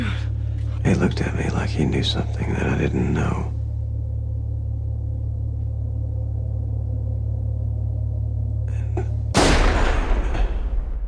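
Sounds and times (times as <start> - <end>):
low steady hum: 0.0 - 11.0
speech: 0.9 - 3.6
single gunshot: 9.4 - 11.0.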